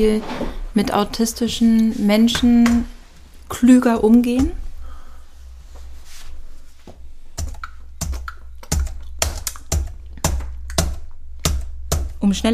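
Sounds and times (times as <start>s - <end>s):
speech: 0.0s - 2.9s, 3.5s - 4.6s, 12.3s - 12.5s
typing on a computer keyboard: 7.4s - 12.1s.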